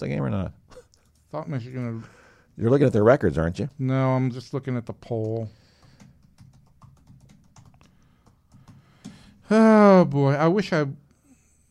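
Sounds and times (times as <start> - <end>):
speech: 0.0 - 0.6, 1.3 - 5.6, 9.5 - 11.0
typing on a computer keyboard: 5.0 - 9.2.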